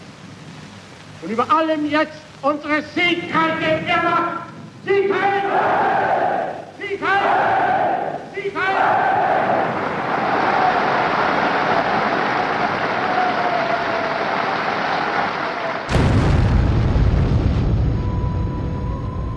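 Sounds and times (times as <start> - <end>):
speech: 1.2 - 9.6
crowd roar in a hall: 5.1 - 16.1
bomb explosion in a hall: 15.9 - 19.3.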